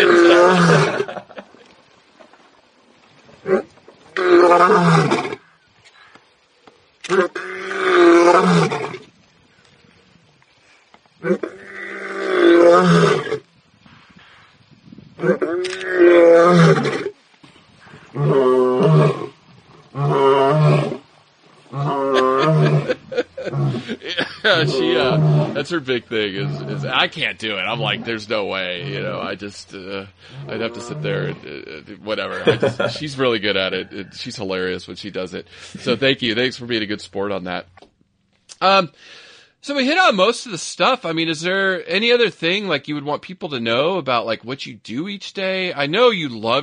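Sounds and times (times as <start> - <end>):
lion roaring: 0.0 - 1.2, 3.4 - 5.4, 7.0 - 9.1, 11.2 - 13.4, 15.2 - 17.1, 18.0 - 21.1, 21.7 - 27.0, 27.6 - 29.3, 30.2 - 31.4
laughter: 0.0 - 1.6, 22.0 - 25.3, 32.2 - 34.3
speech: 25.6 - 37.7, 38.6 - 46.6.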